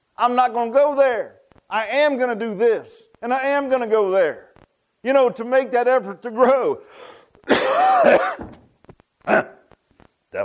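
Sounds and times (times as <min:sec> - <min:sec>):
speech: 0:00.2 - 0:08.6, 0:09.2 - 0:09.6
harsh drawn-out cough in an audience: 0:07.4 - 0:08.6, 0:09.2 - 0:09.8
throat clearing in an audience: 0:07.5 - 0:08.5, 0:09.2 - 0:09.7.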